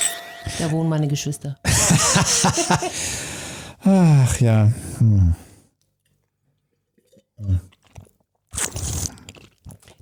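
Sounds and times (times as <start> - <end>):
speech: 0.5 - 5.5, 7.4 - 7.7
laughter: 1.7 - 3.0
slurping a drink: 6.7 - 10.0.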